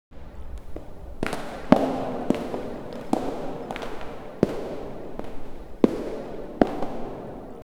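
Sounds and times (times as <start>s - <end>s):
heavy footstep in a cathedral: 0.1s - 7.7s.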